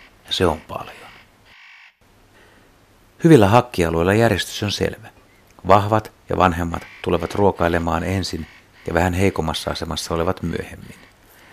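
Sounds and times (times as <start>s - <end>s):
spotted nutcracker giving harsh rasping calls: 0.0s - 2.0s, 6.5s - 9.4s
speech: 0.3s - 1.1s, 3.2s - 11.1s.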